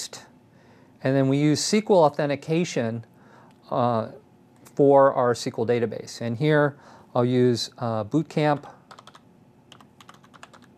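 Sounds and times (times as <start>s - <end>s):
speech: 1.0s - 3.1s, 3.7s - 4.2s, 4.8s - 8.8s
typing on a computer keyboard: 8.9s - 10.7s.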